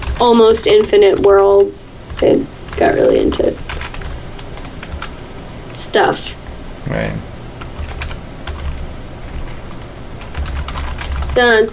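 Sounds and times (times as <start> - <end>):
rapid uneven computer keyboard clicks: 0.0 - 5.1, 7.6 - 11.7
speech: 0.2 - 3.6, 5.8 - 7.3, 11.4 - 11.7.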